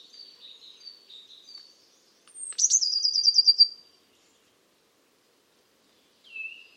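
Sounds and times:
Eurasian blue tit singing: 0.0s - 3.8s.

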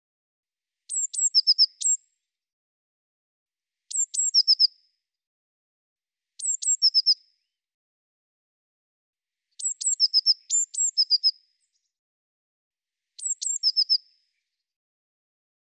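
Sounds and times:
Eurasian blue tit song: 0.9s - 2.2s, 3.8s - 4.9s, 6.4s - 7.6s, 9.5s - 11.9s, 13.1s - 14.7s.

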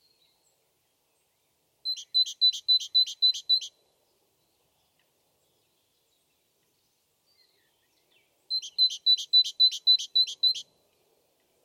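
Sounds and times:
great tit whistling two-note phrases: 1.9s - 3.7s, 8.5s - 10.6s.

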